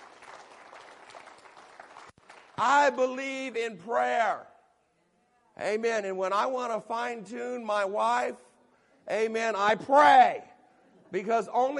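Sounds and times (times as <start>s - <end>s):
church congregation applauding: 0.0s - 2.9s
speech: 2.6s - 4.5s, 5.6s - 10.5s, 11.1s - 11.7s.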